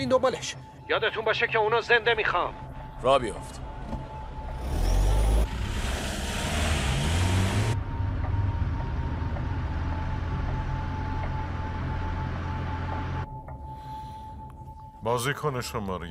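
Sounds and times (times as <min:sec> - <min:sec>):
speech: 0:00.0 - 0:03.7, 0:15.0 - 0:16.1
limousine engine rumbling as it pulls away: 0:03.3 - 0:13.5.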